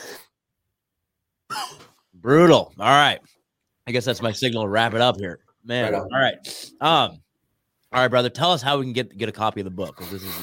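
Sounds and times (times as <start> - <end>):
harsh breathy coughs: 1.5 - 2.0
speech: 2.2 - 7.2, 7.9 - 10.4.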